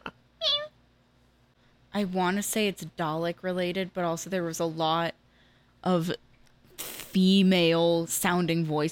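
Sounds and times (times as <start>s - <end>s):
cat meowing: 0.4s - 0.7s
speech: 2.0s - 5.1s, 5.8s - 6.2s, 7.2s - 8.8s.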